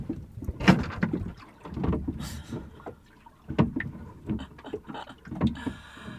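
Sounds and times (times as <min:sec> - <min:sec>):
sailboat rigging clattering in gusty wind at anchor in Dubai: 0:00.0 - 0:06.1.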